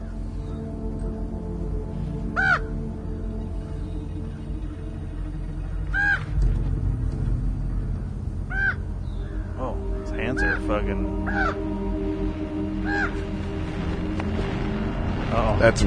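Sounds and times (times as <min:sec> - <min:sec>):
steady low rumble of noise: 0:00.0 - 0:15.8
crows cawing with harsh ringing squawks: 0:01.9 - 0:06.4, 0:07.6 - 0:14.2
speech: 0:10.4 - 0:11.7, 0:15.3 - 0:15.8.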